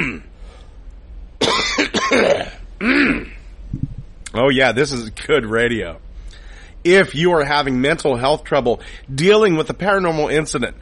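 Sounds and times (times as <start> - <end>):
harsh coughs: 0.0 - 0.3, 1.4 - 3.4
throat clearing: 0.0 - 0.3, 1.4 - 3.4
speech: 4.4 - 6.0, 6.8 - 10.8.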